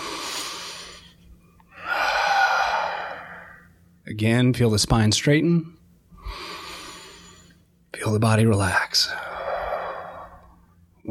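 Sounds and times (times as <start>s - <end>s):
person breathing deeply in through the nose and out through the mouth in meditation: 0.0s - 3.8s, 6.2s - 7.6s, 9.1s - 10.6s
speech: 4.1s - 5.8s, 8.0s - 9.3s.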